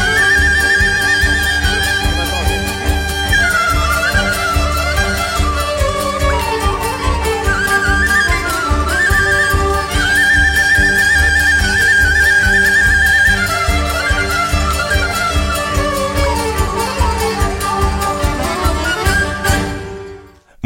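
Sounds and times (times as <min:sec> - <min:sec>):
Hutsul folk ritual music: 0:00.0 - 0:20.6.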